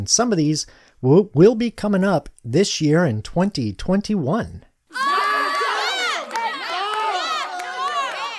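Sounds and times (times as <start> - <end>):
speech: 0.0 - 5.1
canned studio audience cheering and shouting: 4.9 - 8.3.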